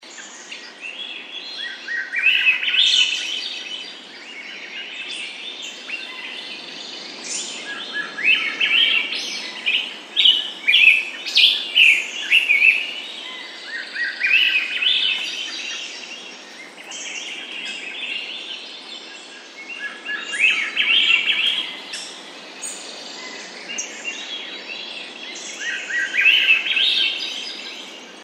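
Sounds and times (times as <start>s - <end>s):
shoreline forest ambience: 0.0s - 28.2s.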